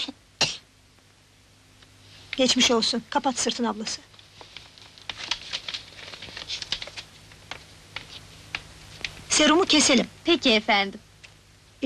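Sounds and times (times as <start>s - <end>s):
child coughing during a doctor's examination: 0.4s - 0.7s
speech: 2.4s - 4.1s, 9.4s - 11.0s.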